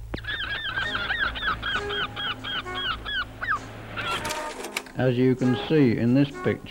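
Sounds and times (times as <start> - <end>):
flock of seagulls calling following a boat carrying caught fish: 0.2 - 4.7
speech: 5.0 - 6.6.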